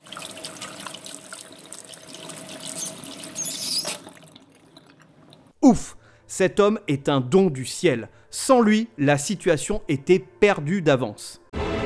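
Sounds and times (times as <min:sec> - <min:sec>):
water running from a tap: 0:00.0 - 0:05.6
tap handle squeaking while turning: 0:02.6 - 0:04.1
speech: 0:05.7 - 0:11.4.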